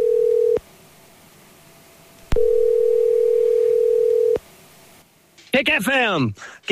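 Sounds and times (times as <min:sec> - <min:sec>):
telephone ringback tone on an outgoing call: 0:00.0 - 0:00.6, 0:02.3 - 0:04.4
speech: 0:05.6 - 0:06.7.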